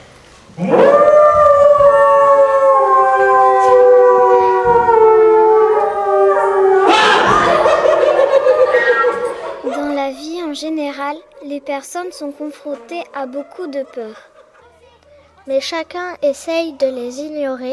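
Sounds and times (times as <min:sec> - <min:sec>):
wolf howling: 0:00.6 - 0:10.0
laughter: 0:06.8 - 0:10.2, 0:12.8 - 0:15.0
speech: 0:11.8 - 0:14.4, 0:15.4 - 0:17.7.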